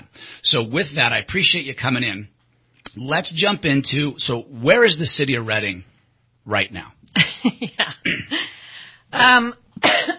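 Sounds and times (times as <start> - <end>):
speech: 0.4 - 8.5, 9.1 - 10.1
person coughing with dry hacks and throaty coughs: 8.0 - 8.4, 9.8 - 10.1.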